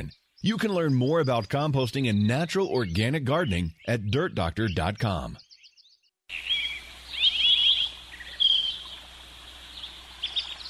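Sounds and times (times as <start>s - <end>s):
speech: 0.0s - 5.5s
birds chirping and trilling: 0.0s - 10.6s
outdoor hiss: 6.3s - 10.6s.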